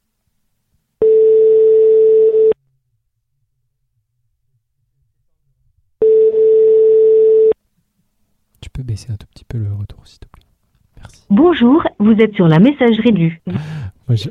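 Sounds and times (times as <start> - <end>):
telephone ringback tone while placing a call: 1.0 - 2.6, 6.0 - 7.6
speech: 9.0 - 10.3, 11.0 - 14.2.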